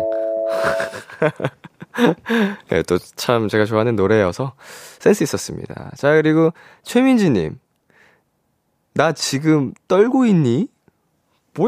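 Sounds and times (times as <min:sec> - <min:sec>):
correct-answer ding-dong-dang chime: 0:00.0 - 0:01.0
laughter: 0:00.6 - 0:02.3
speech: 0:00.6 - 0:07.6, 0:09.0 - 0:10.7.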